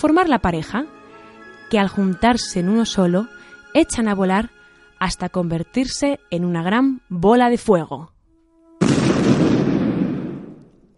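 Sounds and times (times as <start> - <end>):
speech: 0.0 - 1.0, 1.7 - 8.1
explosion sound effect: 8.8 - 10.9.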